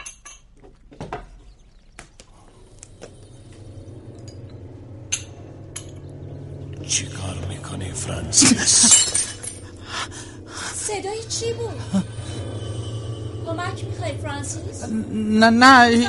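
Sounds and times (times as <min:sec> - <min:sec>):
speech: 0:06.9 - 0:09.0, 0:10.9 - 0:12.1, 0:13.6 - 0:16.0
drinking glass dropped and shattering on the floor: 0:08.4 - 0:09.8.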